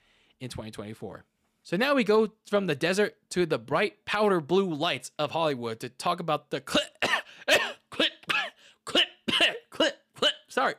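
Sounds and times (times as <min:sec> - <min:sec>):
speech: 0:00.4 - 0:06.9
person coughing in short voiced bursts: 0:06.7 - 0:10.5.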